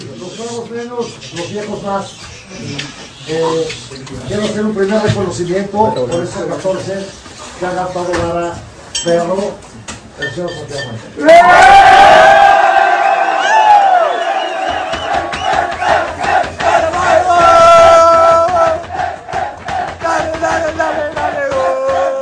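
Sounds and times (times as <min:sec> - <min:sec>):
speech: 0:00.4 - 0:12.4
large stadium crowd chanting in unison: 0:11.4 - 0:22.2.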